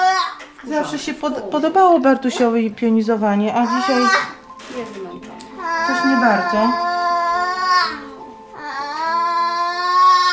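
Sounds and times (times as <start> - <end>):
child crying during physiotherapy standing exercises: 0.0 - 0.4, 3.6 - 4.4, 5.6 - 10.3
speech: 0.7 - 6.9.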